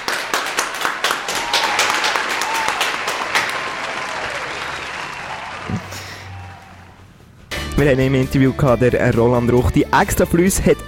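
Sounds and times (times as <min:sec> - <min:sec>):
applause from a group: 0:00.0 - 0:07.2
speech: 0:07.8 - 0:10.8.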